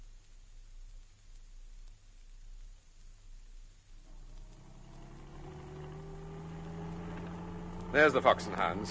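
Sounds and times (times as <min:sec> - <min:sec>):
car engine accelerating: 0:04.0 - 0:08.9
road rumble: 0:04.0 - 0:08.9
speech: 0:07.9 - 0:08.9.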